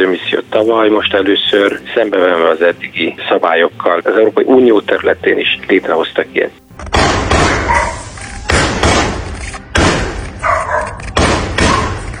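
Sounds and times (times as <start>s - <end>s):
speech: 0.0s - 9.3s
gunshots fired into the air: 6.8s - 12.1s.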